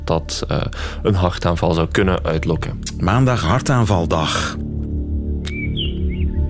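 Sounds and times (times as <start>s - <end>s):
speech: 0.1s - 4.7s
birds chirping and tweeting: 5.4s - 6.4s.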